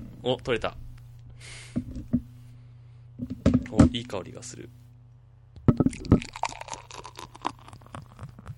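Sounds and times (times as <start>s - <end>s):
speech: 0.3s - 0.8s, 3.7s - 4.8s
Festbier beer glugging and splashing as poured into a glass: 5.9s - 8.4s.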